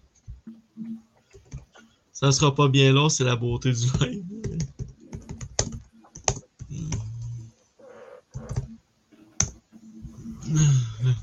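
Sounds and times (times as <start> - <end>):
speech: 2.2 - 4.3
typing on a computer keyboard: 4.4 - 7.3, 8.3 - 8.7.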